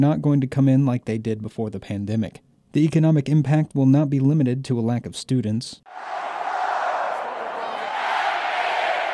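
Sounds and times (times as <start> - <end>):
speech: 0.0 - 6.3
huge crowd cheering at a West Virginia University football game in Morgantown: 5.9 - 9.1.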